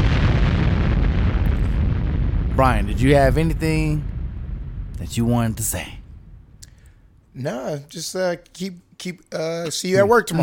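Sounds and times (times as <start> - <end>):
explosion sound effect: 0.0 - 7.3
speech: 2.6 - 4.1, 5.0 - 6.0, 7.4 - 10.4.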